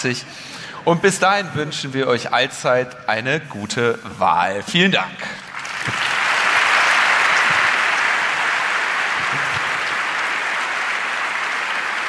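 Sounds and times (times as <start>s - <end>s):
speech: 0.0s - 6.0s
large audience applauding at the end of a talk: 5.4s - 12.0s.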